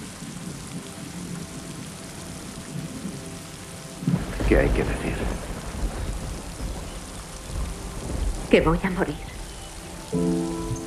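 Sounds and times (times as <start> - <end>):
rain falling: 0.0 - 10.8
speech: 4.5 - 5.3, 8.5 - 9.3, 10.1 - 10.4.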